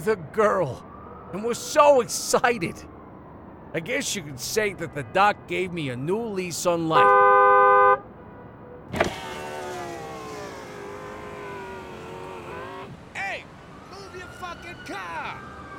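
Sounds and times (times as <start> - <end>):
speech: 0.0 - 2.9, 3.7 - 7.2
car horns honking in stalled traffic: 6.9 - 8.1.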